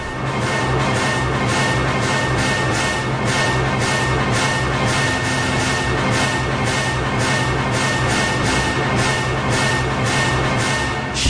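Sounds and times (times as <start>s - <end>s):
hardcore orchestral hits: 0.0s - 11.2s.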